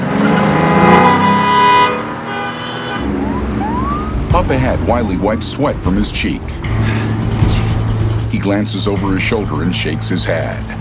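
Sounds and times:
car horns blaring: 0:00.0 - 0:08.3
engine whining upward as car pulls away: 0:00.0 - 0:08.4
busy street noise: 0:00.0 - 0:10.7
car roaring as it reverses and swerves onto an avenue: 0:00.0 - 0:10.7
speech: 0:04.6 - 0:07.1, 0:08.4 - 0:10.7.

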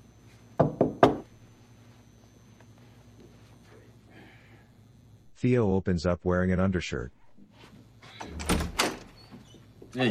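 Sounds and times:
knocking on an apartment door in an apartment building hallway: 0:00.6 - 0:01.2
speech: 0:05.4 - 0:07.2.

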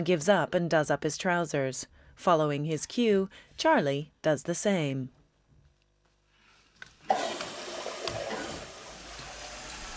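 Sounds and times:
speech: 0:00.0 - 0:05.2
hands being washed under a sink tap: 0:06.7 - 0:09.9
water running from a sink tap in a restroom: 0:07.0 - 0:09.9.

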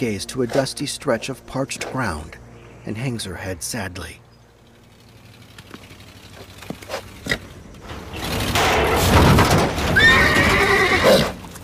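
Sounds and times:
speech: 0:00.0 - 0:04.2
truck driving past a crumbling wall: 0:00.0 - 0:11.6
rearing colt neighing: 0:09.9 - 0:11.4.

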